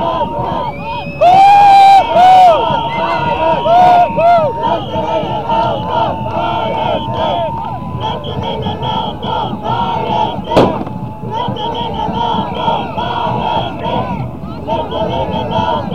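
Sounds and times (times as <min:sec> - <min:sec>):
crowd of press people shouting and calling out: 0:00.0 - 0:15.9
sharp bang: 0:10.5 - 0:11.2.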